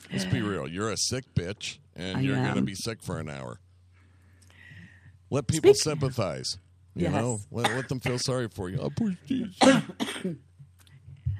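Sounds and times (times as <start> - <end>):
speech: 0.1 - 3.6, 5.3 - 10.5
harsh throaty coughs: 7.6 - 8.3, 9.6 - 10.4.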